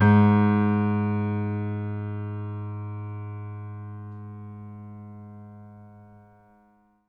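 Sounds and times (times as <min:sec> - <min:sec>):
acoustic piano mix left channel: 0:00.0 - 0:06.9.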